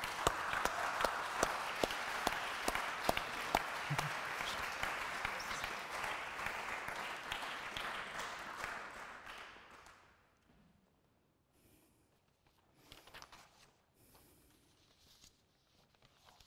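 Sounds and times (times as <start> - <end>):
audience applause: 0.0 - 10.0.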